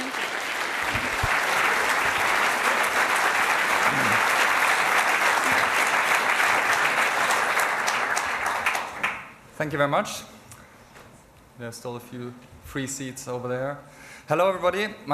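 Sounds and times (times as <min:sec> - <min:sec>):
large audience applause: 0:00.0 - 0:09.3
speech: 0:09.6 - 0:10.4, 0:11.6 - 0:15.1.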